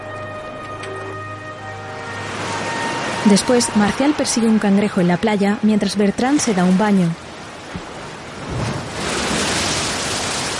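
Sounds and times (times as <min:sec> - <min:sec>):
waves breaking against rocks on a beach: 0:02.3 - 0:10.5
speech: 0:03.2 - 0:07.2.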